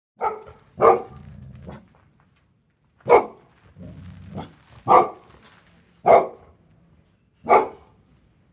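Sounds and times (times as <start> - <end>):
dog: 0.2 - 1.9, 3.1 - 3.4, 4.0 - 5.3, 6.1 - 6.5, 7.5 - 7.9.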